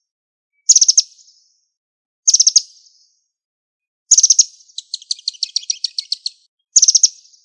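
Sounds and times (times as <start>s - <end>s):
bird chirping: 0.6s - 1.7s, 2.3s - 3.2s, 4.1s - 7.4s.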